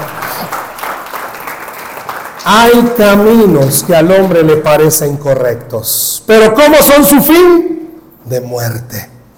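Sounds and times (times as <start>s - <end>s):
congregation applauding: 0.0s - 3.3s
speech: 2.5s - 9.1s.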